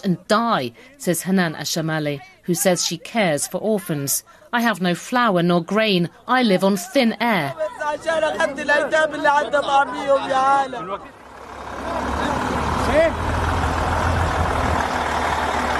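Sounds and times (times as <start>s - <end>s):
speech: 0.0s - 11.2s, 12.9s - 13.3s
heavy lorries rumbling past through a border crossing: 7.8s - 15.7s.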